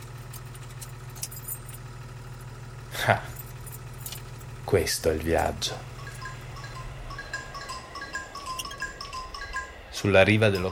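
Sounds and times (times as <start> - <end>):
metallic jangle and clunk of the ignition key: 0.0 - 2.5, 3.3 - 4.6, 6.0 - 9.7
car engine idling with a steady low hum: 0.0 - 10.7
speech: 3.0 - 3.3, 4.7 - 5.9, 10.0 - 10.7.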